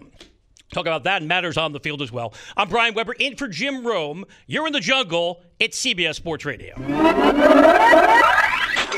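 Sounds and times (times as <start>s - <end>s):
speech: 0.7s - 8.5s
sale notification cha-ching chime: 6.8s - 8.8s.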